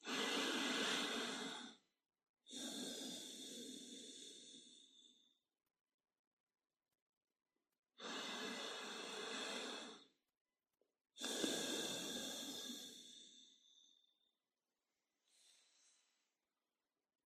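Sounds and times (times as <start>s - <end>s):
slow deep breaths in and out: 0.0s - 1.9s, 2.5s - 5.4s, 8.0s - 10.1s, 11.2s - 14.3s, 15.2s - 16.4s.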